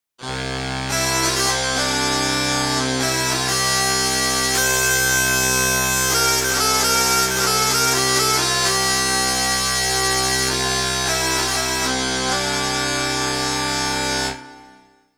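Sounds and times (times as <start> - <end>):
bagpipe: 0.2 - 14.9.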